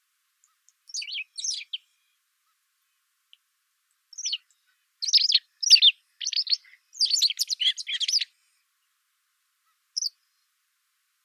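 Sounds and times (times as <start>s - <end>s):
white wagtail chirping: 4.2s - 4.4s, 5.0s - 8.3s.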